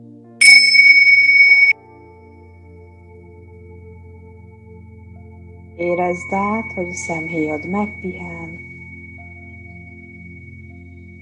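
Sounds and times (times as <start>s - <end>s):
single bright bell ringing at the start of a guided relaxation: 0.4s - 1.8s
speech: 5.8s - 8.6s.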